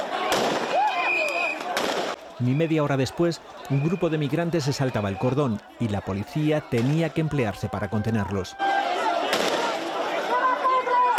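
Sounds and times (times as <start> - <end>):
crowd noise: 0.0 - 11.1
gunshots fired into the air: 0.3 - 0.8, 1.6 - 2.2
indistinct voices: 2.2 - 9.1
speech: 2.4 - 9.1.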